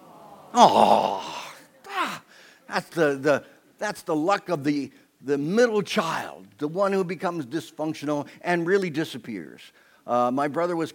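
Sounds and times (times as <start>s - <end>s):
audience groaning on request: 0.5s - 2.2s
speech: 0.6s - 1.4s, 2.7s - 10.9s.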